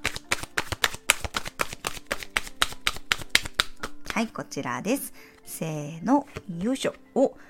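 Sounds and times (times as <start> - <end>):
deck of divination cards being handled and shuffled: 0.0 - 4.3
speech: 4.2 - 7.4.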